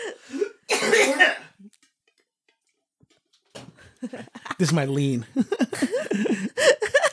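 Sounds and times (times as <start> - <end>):
person coughing: 0.7 - 1.6
laughter: 4.0 - 7.1
speech: 4.1 - 6.9.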